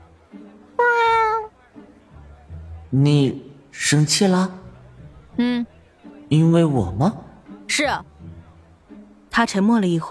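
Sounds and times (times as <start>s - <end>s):
white cat meowing softly: 0.8s - 1.5s
speech: 2.9s - 4.6s, 6.3s - 8.1s, 9.4s - 10.0s.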